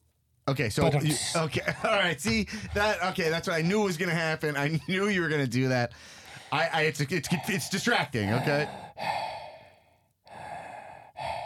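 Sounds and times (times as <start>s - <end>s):
speech: 0.5s - 9.2s
heavy deep breathing muffled through a face mask: 6.0s - 6.6s, 8.4s - 11.4s.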